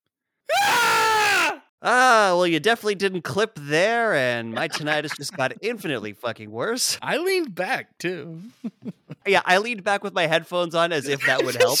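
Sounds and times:
loud human scream: 0.5 - 1.7
speech: 1.8 - 11.7
laughter: 4.4 - 5.8, 8.5 - 9.4, 11.1 - 11.7.

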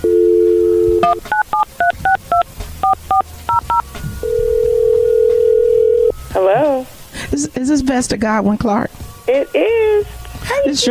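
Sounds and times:
telephone dial tone: 0.0 - 1.2, 3.1 - 6.1
telephone touch tone dual-pitch beeps: 0.0 - 6.2
speech: 1.1 - 1.4, 7.4 - 10.9.

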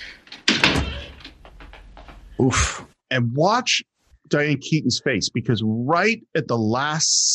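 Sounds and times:
single heavy door slamming shut: 0.0 - 2.2
speech: 2.4 - 7.3.

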